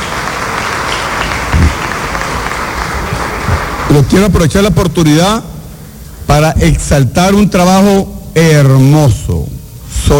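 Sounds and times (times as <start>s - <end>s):
crowd applause: 0.0s - 4.4s
speech: 3.9s - 5.5s, 6.3s - 10.1s.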